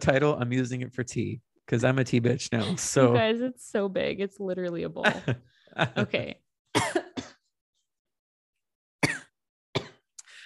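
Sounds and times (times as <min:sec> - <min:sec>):
speech: 0:00.0 - 0:06.4
laughter: 0:05.0 - 0:06.3
woman clearing throat: 0:06.8 - 0:07.4
woman coughing: 0:06.8 - 0:07.5, 0:09.0 - 0:10.0.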